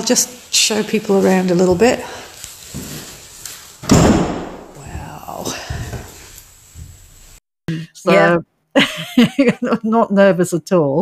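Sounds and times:
speech: 0.1s - 2.9s, 7.7s - 10.9s
door swinging shut with a solid thud: 3.8s - 4.8s.

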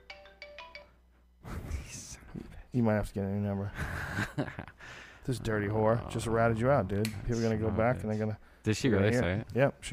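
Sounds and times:
Android phone ringtone for incoming call: 0.0s - 1.0s
speech: 2.8s - 9.9s.

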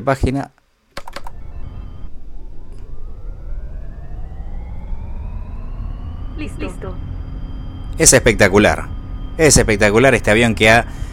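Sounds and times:
speech: 0.0s - 0.6s, 6.4s - 7.1s, 8.0s - 11.0s
keyboard key clicks to start the engines: 1.0s - 1.3s
simulated airplane engines spooling up: 1.0s - 11.1s.

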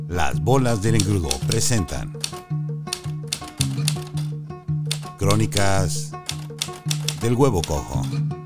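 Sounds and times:
speech: 0.2s - 2.2s, 5.2s - 6.2s, 7.2s - 8.2s
typewriter keys striking: 1.0s - 2.4s, 3.4s - 4.3s, 5.0s - 8.0s.

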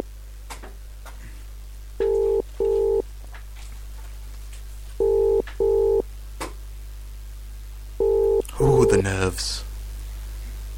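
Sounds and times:
low steady hum: 0.0s - 10.7s
phone line ringing tone through a handset: 2.0s - 3.0s, 5.0s - 6.0s, 8.0s - 9.0s
telephone dialing tones: 2.0s - 3.0s, 5.0s - 6.0s
speech: 8.6s - 9.7s.

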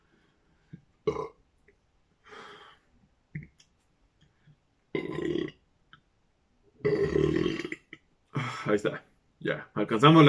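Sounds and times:
loud burps with a rumbling tonal quality: 1.0s - 1.4s, 4.9s - 5.6s, 6.8s - 8.0s
speech: 8.7s - 10.2s.

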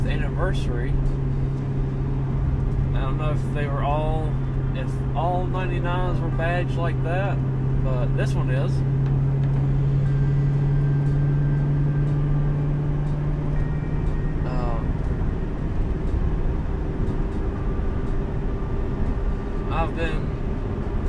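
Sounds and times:
1999 Mustang 35th anniversary edition engine rumble heard from inside the cabin: 0.0s - 21.0s
road noise inside 1999 Mustang cabin: 0.0s - 21.0s
speech: 0.4s - 1.2s, 3.0s - 9.0s.

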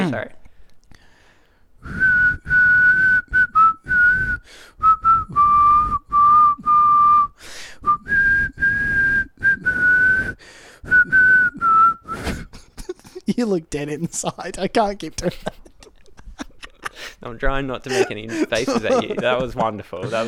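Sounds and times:
speech: 0.1s - 0.4s, 1.8s - 2.2s, 13.3s - 15.5s, 17.2s - 20.2s
person whistling a song melody: 1.8s - 12.5s
laughter: 12.2s - 20.2s.

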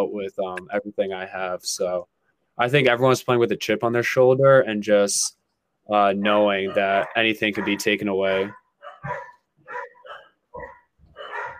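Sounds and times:
speech: 0.0s - 9.2s
Labrador dog barking: 6.6s - 11.5s.

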